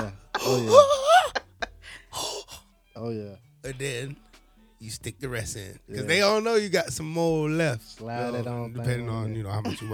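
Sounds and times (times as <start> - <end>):
speech: 0.4 - 1.0, 3.0 - 9.9
person imitating a gasping breath: 0.4 - 2.6.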